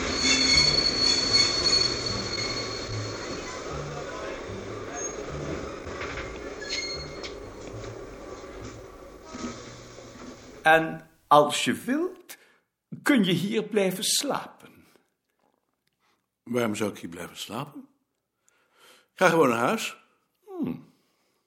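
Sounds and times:
train wheels squealing arriving at a station: 0:00.0 - 0:05.6, 0:06.4 - 0:07.6
train rumbling arriving at a station: 0:00.0 - 0:10.7
speech: 0:10.6 - 0:12.2, 0:13.1 - 0:14.6, 0:16.5 - 0:17.9, 0:19.2 - 0:20.0, 0:20.6 - 0:20.9.

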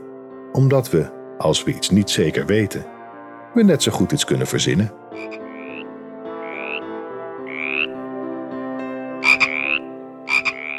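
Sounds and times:
speech: 0:00.5 - 0:03.0, 0:03.6 - 0:05.4
frogs croaking in a steady chorus: 0:05.1 - 0:08.0, 0:09.0 - 0:10.7.

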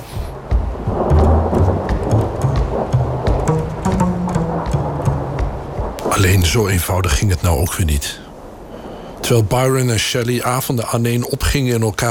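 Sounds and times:
sharp crackling bursts of thunder: 0:00.0 - 0:08.7
heavy rain: 0:00.0 - 0:12.0
low thunder rumbling: 0:00.3 - 0:08.7
speech: 0:06.2 - 0:08.2, 0:09.3 - 0:12.0.

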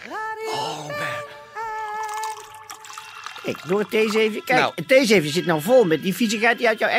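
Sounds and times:
jenever poured through a tea strainer into a glass: 0:02.0 - 0:04.8
speech: 0:03.4 - 0:06.9.

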